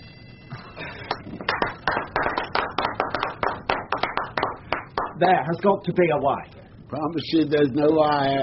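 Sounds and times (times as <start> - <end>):
small group clapping rhythmically: 0.9 - 5.3
speech: 5.2 - 8.4.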